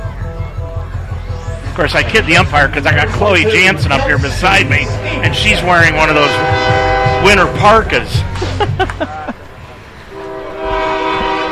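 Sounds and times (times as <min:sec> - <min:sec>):
low rumble of passing train: 0:00.0 - 0:11.5
speech: 0:01.8 - 0:09.1
laughter: 0:02.8 - 0:06.1, 0:07.8 - 0:09.6
train horn blaring multi-tone blast: 0:03.6 - 0:08.3, 0:10.1 - 0:11.5.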